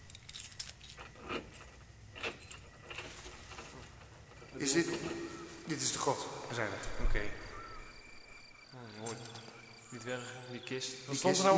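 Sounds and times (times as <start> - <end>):
keys jangling while unlocking a door: 0.0 - 3.8, 8.9 - 9.6
metallic rattles and scrapes of a door being unlocked: 0.0 - 5.1
soft hiss: 0.0 - 11.5
speech: 4.6 - 7.5, 8.8 - 11.5.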